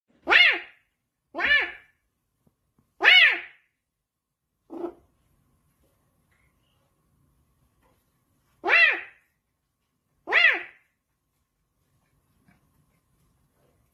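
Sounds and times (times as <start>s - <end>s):
cat meowing: 0.2s - 0.8s, 1.4s - 1.9s, 3.0s - 3.6s, 8.6s - 9.2s, 10.3s - 10.8s.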